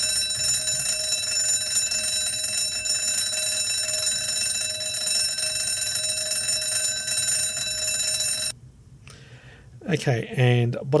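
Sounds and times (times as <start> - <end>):
loud metallic bell-like alarm clock ring: 0.0 - 8.5
speech: 9.9 - 10.9.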